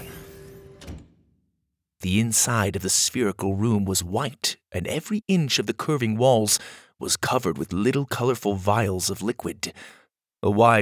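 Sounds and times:
futuristic sci-fi sliding door opening with whooshing hum and whine: 0.0s - 1.3s
speech: 2.0s - 10.7s.

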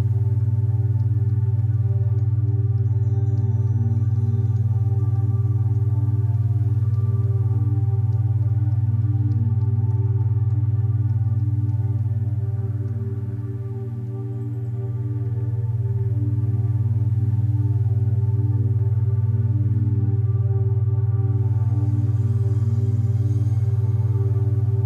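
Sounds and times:
binaural beat tones humming as a low drone: 0.0s - 24.8s.

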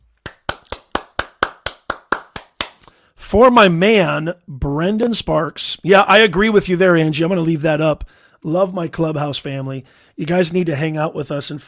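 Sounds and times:
single pair of hands clapping in a steady beat: 0.0s - 3.0s
speech: 3.3s - 11.6s.

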